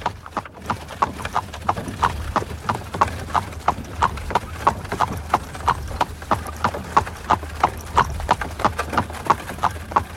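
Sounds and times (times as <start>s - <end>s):
horse hooves clip-clopping as a horse-drawn carriage sets off trotting: 0.0s - 10.1s.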